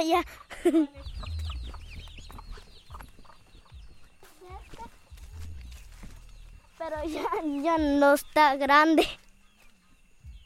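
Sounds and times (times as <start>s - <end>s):
speech: 0.0s - 1.4s, 6.8s - 9.2s
hen clucking while eating: 0.0s - 7.9s
chicks peeping while eating: 0.2s - 8.5s, 9.2s - 10.4s.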